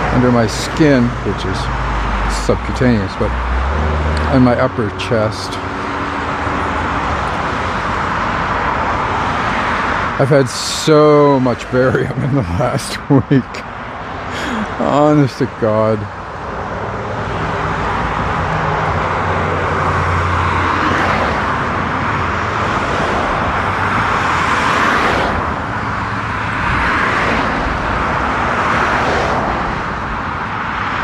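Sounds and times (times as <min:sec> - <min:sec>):
other traffic passing: 0:00.0 - 0:31.0
road noise inside a moving vehicle: 0:00.0 - 0:31.0
speech: 0:00.2 - 0:05.7, 0:10.2 - 0:13.7, 0:14.8 - 0:16.2
laughter: 0:11.2 - 0:13.6.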